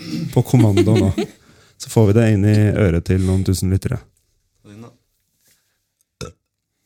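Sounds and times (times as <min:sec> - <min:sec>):
speech: 0:00.3 - 0:05.0
laughter: 0:00.4 - 0:01.4
small low throaty burp: 0:06.2 - 0:06.6.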